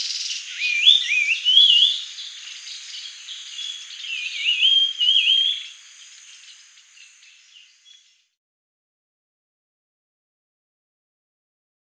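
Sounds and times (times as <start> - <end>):
Grey-headed babbler whistled song: 0.0 - 2.0, 4.1 - 5.7.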